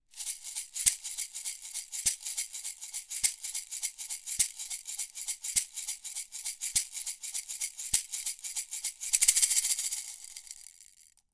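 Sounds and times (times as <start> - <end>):
shaker recorded with a Neumann TLM 103 microphone: 0.0 - 11.2.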